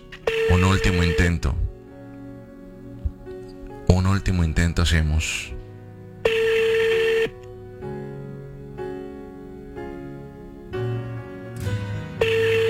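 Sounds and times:
sustained sound: 0:00.0 - 0:12.6
ringback tone of an outgoing phone call: 0:00.1 - 0:01.6, 0:06.2 - 0:07.4, 0:12.2 - 0:12.6
speech: 0:00.7 - 0:01.6, 0:04.2 - 0:05.6.

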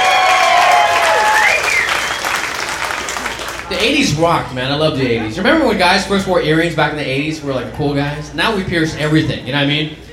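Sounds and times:
audience clapping: 0:00.0 - 0:03.9
crowd whistles: 0:00.4 - 0:02.6
speech: 0:03.8 - 0:10.0.

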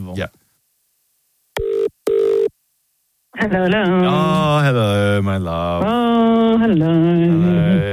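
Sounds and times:
speech: 0:00.1 - 0:00.4, 0:03.4 - 0:07.9
telephone ringing in short buzzing electronic tones: 0:01.6 - 0:02.5.

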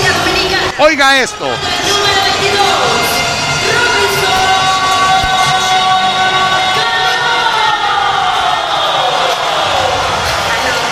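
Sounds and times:
packed baseball stadium crowd cheering in an ovation: 0:00.0 - 0:10.8
noisemakers or horns sounding tonal notes: 0:00.1 - 0:08.4
speech: 0:00.8 - 0:03.0.

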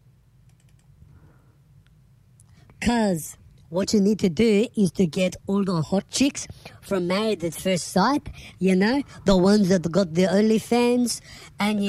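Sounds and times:
low steady hum: 0:00.0 - 0:11.8
typing on a computer keyboard: 0:00.5 - 0:00.9
speech: 0:02.8 - 0:11.8.

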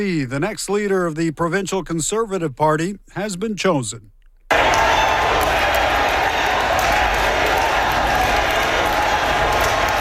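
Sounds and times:
speech: 0:00.0 - 0:04.8
large crowd of supporters cheering and chanting: 0:04.5 - 0:09.9
people clapping: 0:04.5 - 0:09.9
people shouting: 0:04.5 - 0:09.9.

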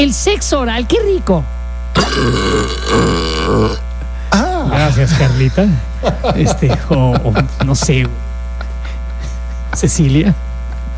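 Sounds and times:
speech: 0:00.0 - 0:08.2, 0:09.8 - 0:10.4
loud deep gravelly burp: 0:02.0 - 0:03.8
laughter: 0:04.3 - 0:10.1.

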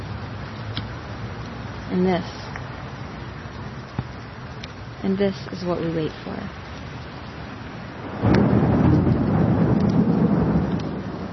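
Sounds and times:
steady pouring monsoon rain: 0:00.0 - 0:11.3
sharp drop or crackle ticks: 0:00.4 - 0:01.6, 0:02.4 - 0:02.7, 0:03.8 - 0:04.8, 0:05.4 - 0:07.1, 0:08.2 - 0:11.1
speech: 0:01.9 - 0:02.4, 0:05.0 - 0:06.6
deep rolling thunder of a monsoon thunderstorm: 0:08.0 - 0:11.3.

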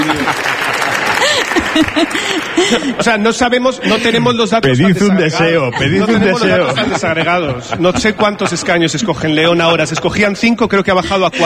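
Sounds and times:
audience applause: 0:00.0 - 0:03.2
laughter: 0:00.0 - 0:09.8, 0:10.8 - 0:11.4
speech: 0:02.7 - 0:11.4.

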